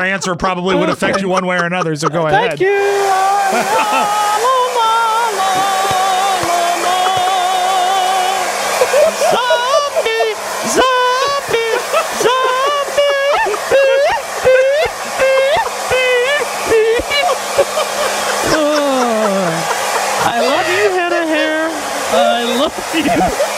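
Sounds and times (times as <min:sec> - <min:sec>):
speech: 0:00.0 - 0:04.6, 0:22.7 - 0:23.5
laughter: 0:00.0 - 0:23.5
hair dryer blowing while someone dries their hair: 0:02.4 - 0:23.5.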